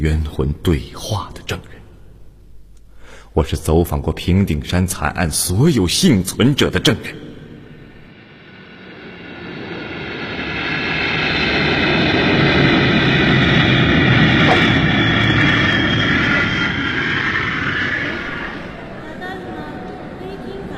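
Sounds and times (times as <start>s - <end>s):
speech: 0.0s - 1.7s, 3.4s - 7.2s
aircraft engine roar at a large airport: 7.4s - 20.7s.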